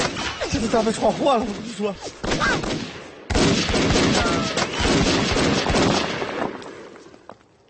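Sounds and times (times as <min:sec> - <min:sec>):
speech: 0:00.5 - 0:03.0
heavy gunfire in rapid bursts: 0:02.2 - 0:06.4.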